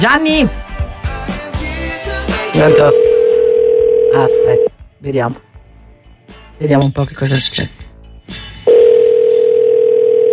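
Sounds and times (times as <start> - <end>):
speech: 0.0 - 0.6, 2.6 - 3.0, 4.1 - 5.5, 6.6 - 8.4
telephone dial tone while a call waits to connect: 2.7 - 4.7, 8.7 - 10.3.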